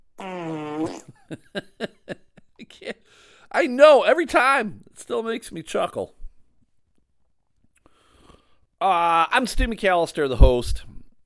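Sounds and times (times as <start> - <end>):
buzzing fart sound effect from a novelty fart machine: 0.2 - 1.2
speech: 0.8 - 1.9, 2.7 - 6.2, 8.8 - 10.9.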